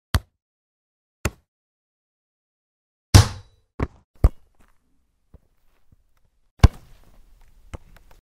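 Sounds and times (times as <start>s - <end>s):
rugby ball: 3.2s - 4.7s, 6.6s - 8.0s.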